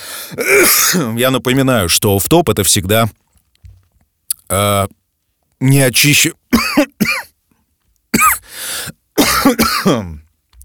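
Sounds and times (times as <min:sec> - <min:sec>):
person coughing harshly: 0:00.3 - 0:01.2, 0:06.5 - 0:07.3, 0:08.1 - 0:08.5, 0:09.2 - 0:10.2
speech: 0:00.3 - 0:03.2, 0:04.5 - 0:05.0, 0:05.6 - 0:07.2, 0:09.5 - 0:10.2.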